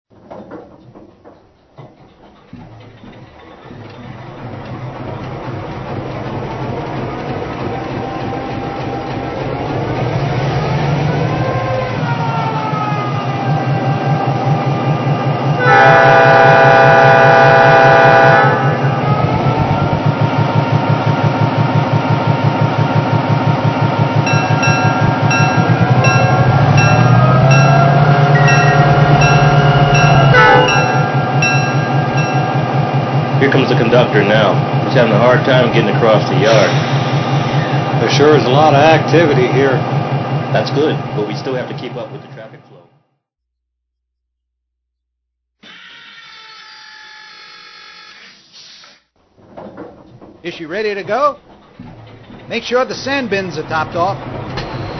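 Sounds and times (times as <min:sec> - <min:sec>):
GP-9 locomotive: 0:00.1 - 0:43.0, 0:49.2 - 0:54.9.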